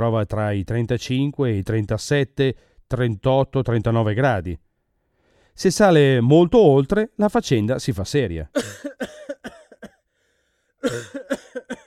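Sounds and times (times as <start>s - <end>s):
speech: 0.0s - 4.6s, 5.6s - 9.1s, 10.8s - 11.7s
harsh hacking coughing: 8.5s - 10.1s, 10.8s - 11.8s.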